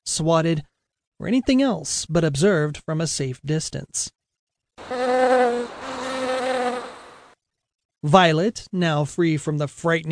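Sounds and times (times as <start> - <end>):
speech: 0.1 - 4.2, 8.0 - 10.1
honeybee buzzing as it flies away: 4.8 - 7.3.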